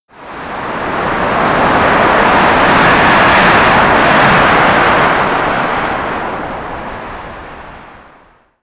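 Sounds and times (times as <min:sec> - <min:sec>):
rain: 0:00.1 - 0:08.4
wind gust: 0:00.1 - 0:08.6.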